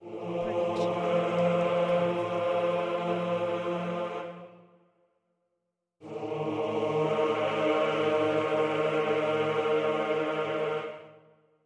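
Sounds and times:
epic male choir singing: 0:00.0 - 0:04.7, 0:06.0 - 0:11.3.

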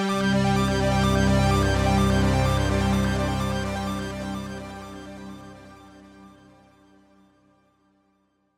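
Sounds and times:
inspiring sci-fi ident music: 0:00.1 - 0:06.3.

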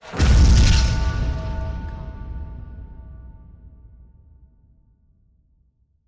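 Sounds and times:
anime metallic explosion: 0:00.0 - 0:03.8.

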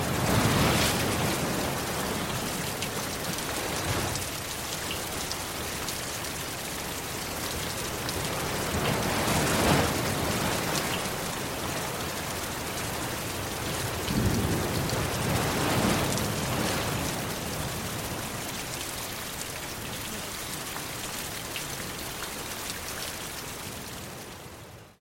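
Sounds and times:
rain: 0:00.0 - 0:25.0
wind: 0:00.0 - 0:25.0.

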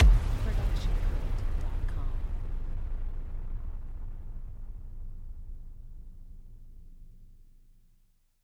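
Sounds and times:
cinematic hit: 0:00.0 - 0:06.5.

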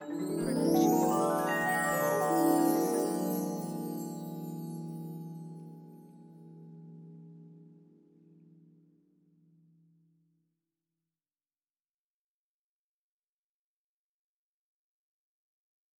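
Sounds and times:
fantasy glissando: 0:00.0 - 0:05.9.

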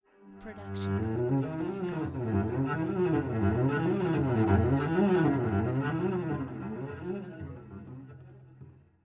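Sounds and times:
cello whole tone runs: 0:00.8 - 0:07.3.

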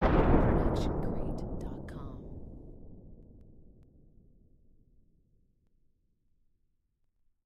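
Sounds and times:
sonic rippling explosion: 0:00.0 - 0:04.5.

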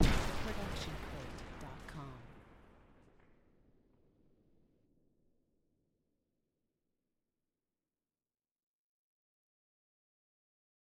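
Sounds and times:
explosion debris: 0:00.0 - 0:02.6
explosion blast: 0:00.0 - 0:03.3.

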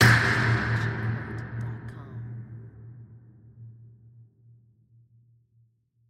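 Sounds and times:
designed medium impact hit: 0:00.0 - 0:03.8.

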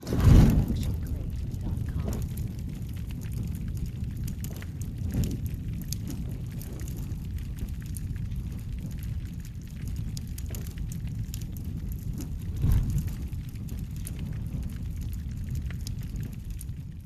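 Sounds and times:
large fire igniting: 0:00.0 - 0:17.0.

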